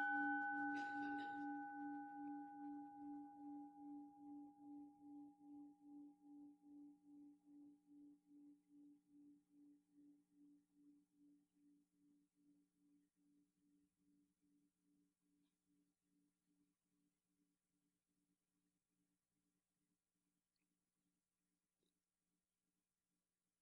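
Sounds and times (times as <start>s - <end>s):
single meditation bell struck with long pulsing humming tone: 0.0s - 5.6s.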